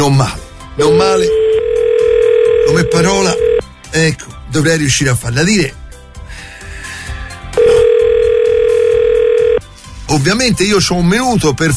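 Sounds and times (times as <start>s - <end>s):
speech: 0.0s - 1.4s, 2.7s - 5.8s, 10.1s - 11.7s
quiet music: 0.0s - 11.7s
telephone ringing tone on an outgoing call: 0.8s - 3.6s, 7.6s - 9.6s.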